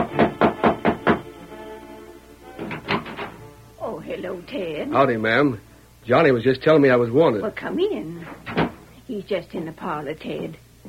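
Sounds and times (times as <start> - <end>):
knocking on a wooden ranch house door: 0.0 - 1.3, 2.6 - 3.4, 8.5 - 8.8
speech: 4.2 - 10.6.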